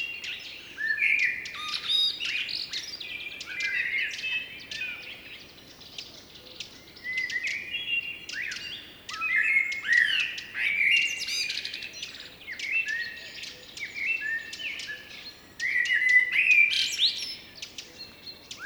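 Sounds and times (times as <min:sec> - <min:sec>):
blackbird singing mellow whistled phrases: 0:00.0 - 0:18.6.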